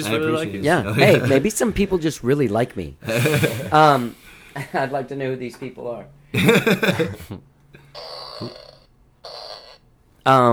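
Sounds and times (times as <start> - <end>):
speech: 0.0 - 8.6, 10.2 - 10.5
laughter: 0.0 - 8.8
novelty fart-maker toy blurts and toots: 7.8 - 9.9.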